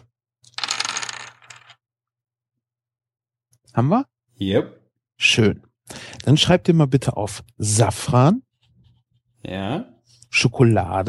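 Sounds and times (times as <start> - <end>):
dice rattling and clattering across a hard surface: 0.4 - 1.8
speech: 3.7 - 8.4, 9.4 - 11.0.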